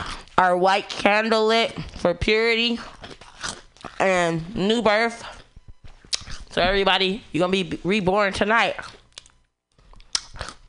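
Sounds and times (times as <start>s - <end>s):
speech: 0.4s - 3.0s, 4.0s - 5.3s, 6.6s - 9.0s
crunching cheese puff snacks: 2.9s - 4.1s, 8.8s - 10.6s.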